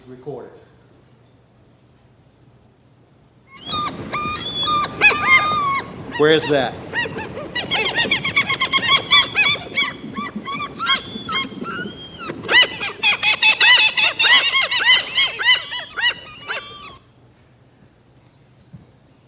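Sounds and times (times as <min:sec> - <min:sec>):
speech: 0:00.1 - 0:00.8, 0:06.2 - 0:06.9
flock of seagulls calling at the beach: 0:03.5 - 0:17.0.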